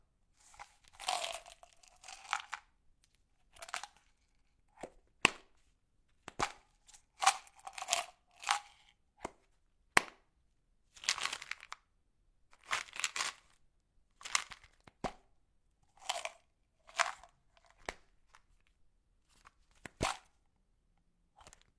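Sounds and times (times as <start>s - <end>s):
pill bottle: 0.4s - 2.7s, 3.5s - 4.9s, 6.3s - 8.9s, 11.0s - 11.7s, 12.6s - 13.5s, 16.0s - 18.0s, 19.4s - 20.4s.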